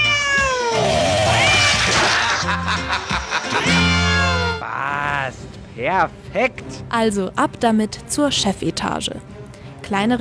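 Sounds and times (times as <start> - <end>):
cat meow sound effects: 0.0 - 2.0, 3.6 - 4.6
laughter: 1.6 - 4.8
speech: 5.8 - 10.1.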